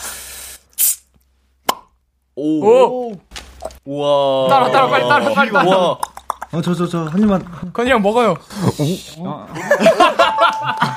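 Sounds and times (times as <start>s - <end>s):
sharp mouth pop imitating a bottle being opened: 1.6s - 2.0s, 6.0s - 6.5s
speech: 2.4s - 10.9s
laughter: 4.5s - 6.0s, 9.5s - 10.9s.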